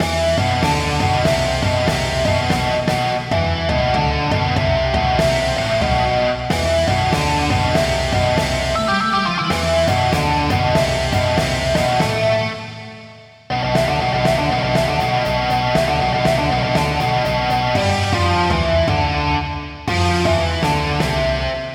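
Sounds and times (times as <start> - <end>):
rock theme song: 0.0 - 21.7.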